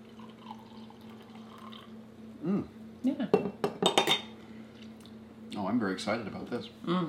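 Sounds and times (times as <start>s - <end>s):
coffee pouring into a mug: 0.0s - 2.0s
low hum: 0.0s - 7.0s
speech: 2.4s - 3.7s, 5.7s - 7.0s.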